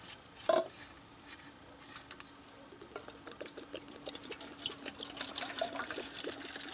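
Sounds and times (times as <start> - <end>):
water poured from canteen into metal pot: 3.4 - 6.7.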